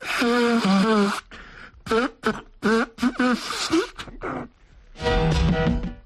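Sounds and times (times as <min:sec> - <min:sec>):
man blowing his nose: 0:00.0 - 0:04.5.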